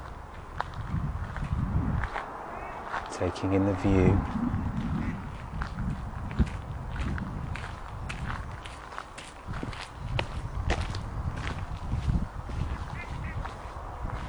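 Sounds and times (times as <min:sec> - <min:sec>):
low rumble: 0:00.0 - 0:08.6
footsteps of people walking outdoors along a tree-lined pathway: 0:00.0 - 0:14.2
speech: 0:03.2 - 0:04.6.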